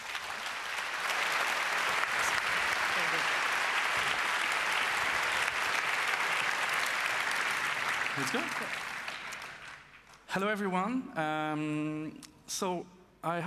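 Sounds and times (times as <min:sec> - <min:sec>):
applause from a sizable audience welcoming speakers: 0:00.0 - 0:10.1
speech: 0:08.2 - 0:08.9, 0:10.3 - 0:13.4.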